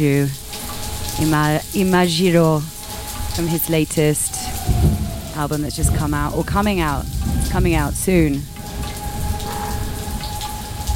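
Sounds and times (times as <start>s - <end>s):
speech: 0.0s - 0.4s, 1.2s - 2.8s, 3.4s - 4.4s, 5.4s - 8.5s
steady rain falling on a rainy day in Los Angeles: 0.0s - 10.9s.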